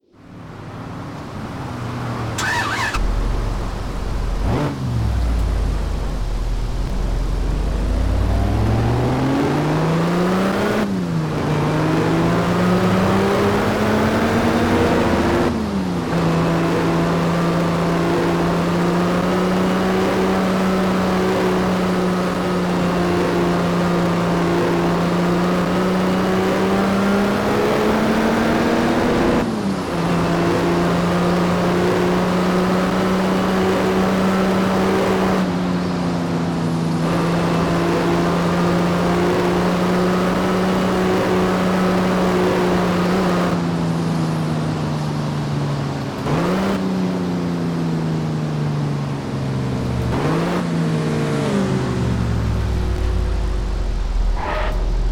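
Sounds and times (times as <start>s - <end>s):
1990 Rolls-Royce Silver Spirit engine: 0.0s - 55.1s.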